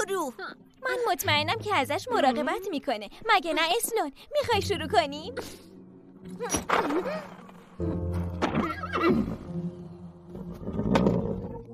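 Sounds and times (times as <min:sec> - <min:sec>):
speech: 0:00.1 - 0:09.6
Hungarian horse neighing: 0:08.6 - 0:09.4.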